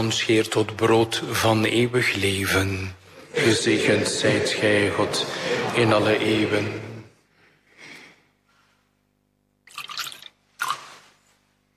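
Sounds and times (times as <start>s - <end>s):
speech: 0.0s - 6.8s
laughter: 3.0s - 7.2s
water poured into a chalice of wine: 9.6s - 11.2s.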